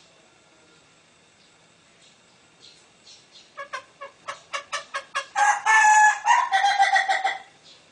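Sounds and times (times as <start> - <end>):
female green junglefowl clucking and cackling: 3.5 - 7.6.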